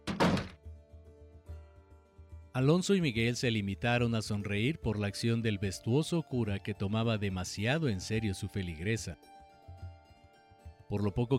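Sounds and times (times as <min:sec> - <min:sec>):
heavy door slamming shut: 0:00.0 - 0:00.6
speech: 0:02.6 - 0:09.3, 0:10.9 - 0:11.3.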